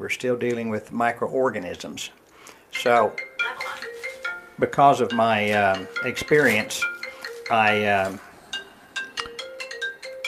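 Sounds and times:
speech: 0:00.0 - 0:03.3, 0:04.6 - 0:08.3
phone ringtone chirping in short electronic tone bursts: 0:02.8 - 0:10.2.

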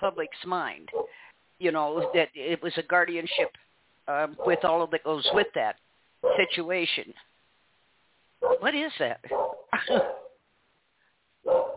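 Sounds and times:
speech: 0:00.0 - 0:07.3, 0:08.4 - 0:10.2
dog barking: 0:00.9 - 0:01.2, 0:06.2 - 0:06.5, 0:08.4 - 0:08.7, 0:09.3 - 0:10.4, 0:11.4 - 0:11.7.

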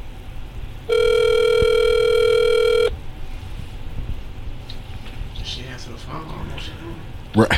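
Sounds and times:
faint noise: 0:00.0 - 0:07.5
telephone ringback tone on an outgoing call: 0:00.9 - 0:02.9.

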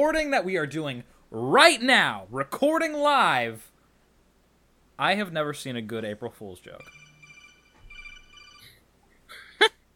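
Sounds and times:
speech: 0:00.0 - 0:03.7, 0:05.0 - 0:07.0
phone text alert electronic chime: 0:06.8 - 0:08.8.

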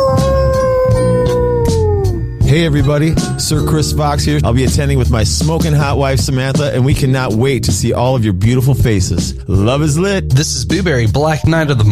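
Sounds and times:
wolf howling: 0:00.0 - 0:02.3
low rumbling backdrop: 0:02.0 - 0:11.9
speech: 0:02.6 - 0:11.9.

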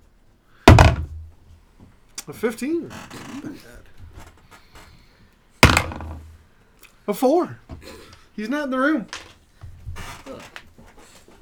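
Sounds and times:
knocks on a wooden door: 0:00.7 - 0:01.3, 0:05.6 - 0:06.3
speech: 0:02.3 - 0:03.9, 0:07.1 - 0:09.2.

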